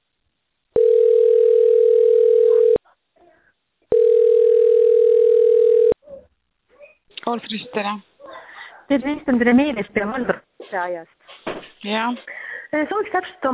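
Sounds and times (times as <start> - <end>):
telephone ringing tone while a call is placed: 0.8 - 2.8, 3.9 - 6.0
speech: 7.3 - 8.1, 8.9 - 11.2, 11.8 - 13.5.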